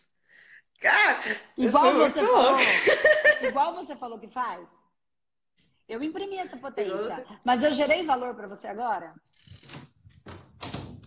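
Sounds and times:
speech: 0.8s - 4.8s, 5.9s - 9.8s
laughter: 1.6s - 3.6s
door being pushed shut with thuds and rattles: 9.6s - 11.0s.

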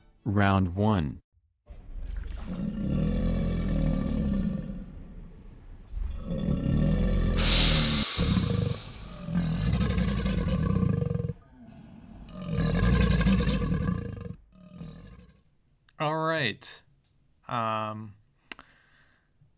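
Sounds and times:
speech: 0.2s - 1.2s, 16.0s - 16.8s, 17.5s - 18.2s
alligator bellowing with a deep gargling growl: 1.7s - 5.2s, 6.0s - 15.4s.

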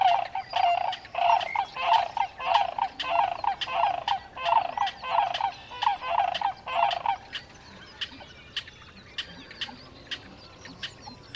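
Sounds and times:
sandhill cranes calling in Sierra Valley Marsh near Portola, California: 0.0s - 11.3s.

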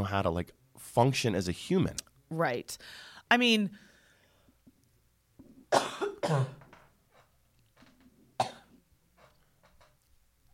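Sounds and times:
speech: 0.0s - 3.9s, 5.7s - 6.6s
harsh coughs from a tickle in the throat: 5.7s - 6.7s, 8.4s - 8.8s.

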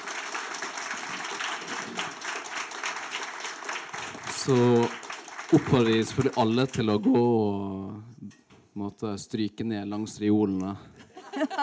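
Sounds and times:
audience applause for a panel after a library debate: 0.0s - 7.0s
speech: 4.4s - 8.1s, 8.8s - 11.6s
laughter: 11.0s - 11.6s.

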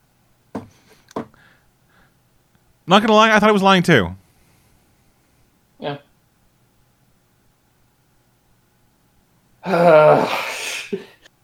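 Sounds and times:
speech: 2.9s - 4.2s
person sneezing: 9.6s - 11.3s
sniff or snort after a sneeze: 10.3s - 11.0s.

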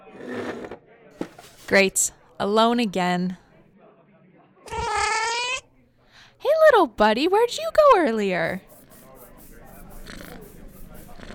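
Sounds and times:
speech: 1.7s - 3.4s, 6.8s - 8.7s
cat meowing: 4.7s - 5.6s.

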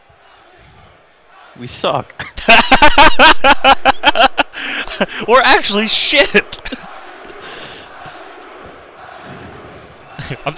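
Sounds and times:
speech: 1.6s - 4.2s, 5.0s - 6.9s
laughter: 2.1s - 8.5s, 9.9s - 10.5s
heavy loud breathing very close to a microphone: 7.4s - 8.0s.

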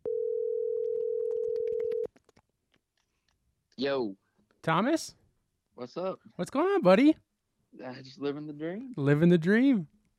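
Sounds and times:
telephone dial tone while placing a call: 0.0s - 2.1s
speech: 3.8s - 5.2s, 5.8s - 7.2s, 7.8s - 10.0s.

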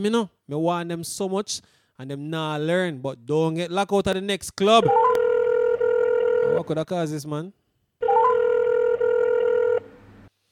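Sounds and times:
speech: 0.0s - 5.1s, 6.5s - 7.6s
telephone ringing with electronic tone: 4.9s - 6.6s, 8.0s - 9.9s.

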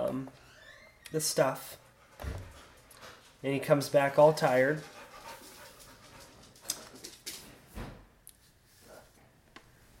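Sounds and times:
speech: 1.1s - 2.5s, 3.4s - 5.0s
tired dog panting softly: 1.6s - 3.4s, 4.4s - 7.2s.

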